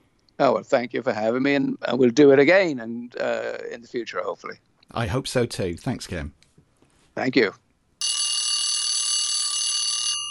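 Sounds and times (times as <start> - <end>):
speech: 0.4 - 6.4, 7.2 - 7.6
alarm bell ringing: 8.0 - 10.2.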